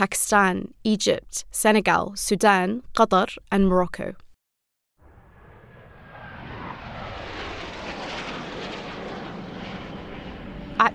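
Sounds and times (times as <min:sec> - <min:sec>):
speech: 0:00.0 - 0:04.2, 0:10.8 - 0:10.9
fighter jets passing overhead: 0:05.0 - 0:10.9.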